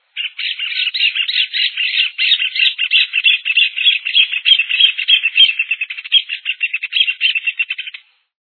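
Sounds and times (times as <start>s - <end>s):
joao-de-barro bird calling: 0.0s - 8.1s.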